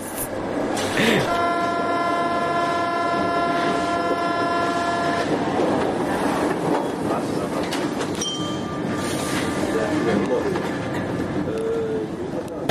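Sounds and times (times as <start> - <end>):
heavy rumbling train wheel and rail noise: 0.0 - 12.7
long steady multi-tone train horn blast: 1.3 - 5.6.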